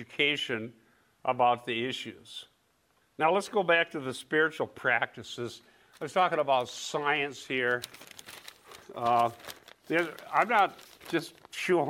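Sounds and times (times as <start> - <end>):
speech: 0.0 - 2.5, 3.2 - 11.8
newspaper pages rustling and crinkling: 7.5 - 11.8.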